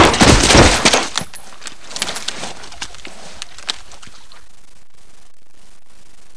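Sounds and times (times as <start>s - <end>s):
body fall: 0.0s - 3.4s.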